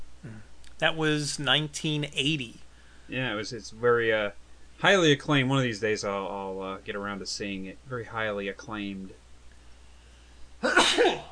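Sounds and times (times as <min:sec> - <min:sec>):
speech: 0:00.8 - 0:09.2
sneeze: 0:10.6 - 0:11.3.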